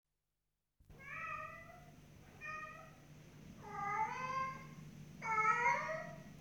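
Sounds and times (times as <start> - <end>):
cat meowing: 0.9 - 3.0, 3.6 - 6.3
low steady hum: 0.9 - 6.4.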